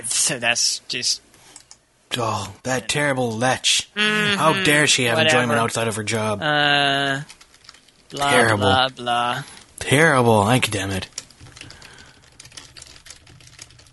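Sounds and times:
speech: 0.3 - 1.3, 2.1 - 7.4, 8.1 - 11.2
typing on a computer keyboard: 7.3 - 8.1, 10.8 - 13.9.

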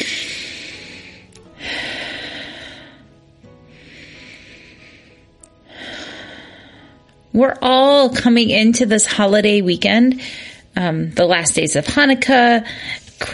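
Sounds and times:
slow deep breathing: 0.0 - 7.2, 10.2 - 10.8
speech: 7.4 - 13.3.

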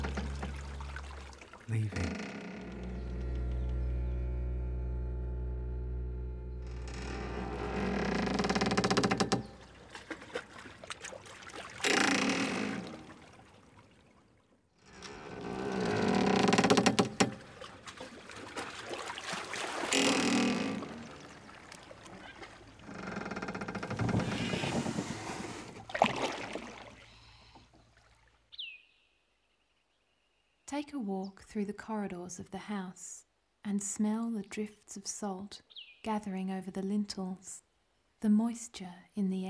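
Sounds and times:
water rushing past a boat moving forward: 0.0 - 5.0, 6.7 - 28.4
low steady drone: 0.0 - 8.0
speech: 1.7 - 2.1, 30.8 - 37.6, 38.2 - 39.4.

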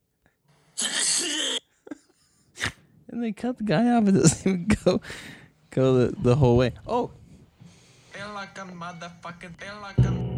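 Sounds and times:
sneeze sound effect played from a soundboard: 0.8 - 1.6
speech: 3.2 - 7.2, 8.4 - 10.3.

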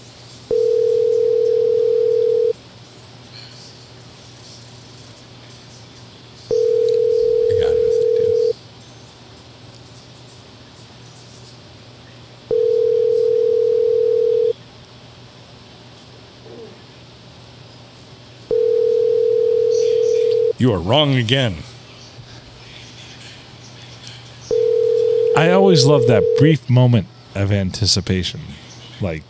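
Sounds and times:
phone ringback tone on an unanswered call: 0.5 - 2.6, 6.5 - 8.6, 12.5 - 14.6, 18.5 - 20.6, 24.5 - 26.5
speech: 20.6 - 21.7, 25.4 - 29.2.

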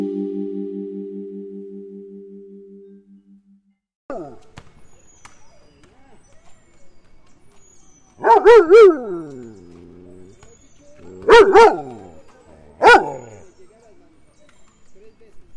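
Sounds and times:
faint noise: 4.2 - 15.5
dogs barking in a park: 8.1 - 13.6.

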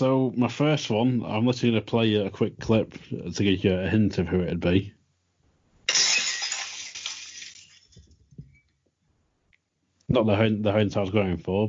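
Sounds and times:
speech: 0.0 - 5.0, 10.1 - 11.6
glass shards tinkling and scattering: 5.9 - 8.0
glass shattering: 5.9 - 8.0.

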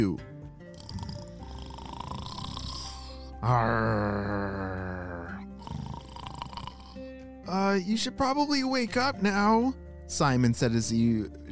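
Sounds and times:
speech: 0.0 - 0.3, 3.4 - 4.6, 7.5 - 11.4
pirate snoring with a purring rumble: 0.7 - 7.4.

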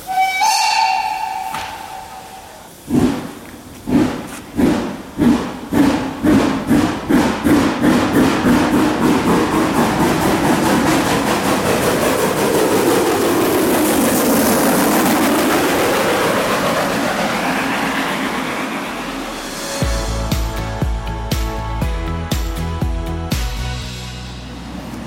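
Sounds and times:
narrow-gauge steam train chuffing as it pulls away from a station: 0.0 - 25.0
rhythmic musical passage: 19.6 - 24.4.

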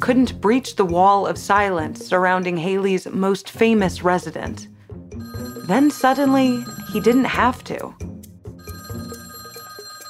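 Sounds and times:
speech: 0.0 - 4.7, 5.7 - 8.0
telephone ringing with metallic bell: 5.2 - 7.9, 8.6 - 10.0.

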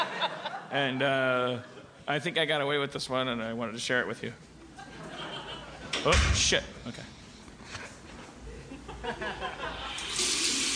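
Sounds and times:
laughter: 0.0 - 2.0, 4.8 - 6.0, 8.4 - 10.2
speech: 0.7 - 4.9, 6.0 - 7.1
water tap running into a sink: 10.0 - 10.7.

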